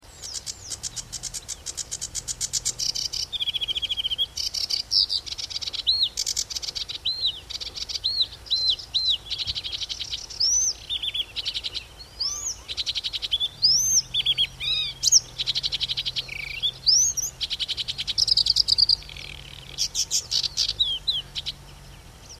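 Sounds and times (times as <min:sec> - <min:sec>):
sedge warbler: 0:00.0 - 0:22.3.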